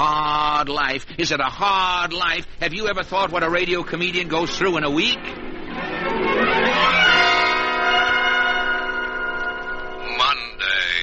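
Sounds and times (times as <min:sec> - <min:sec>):
speech: 0:00.0 - 0:05.4
alarm clock ringing with a metallic bell tone: 0:04.4 - 0:11.0.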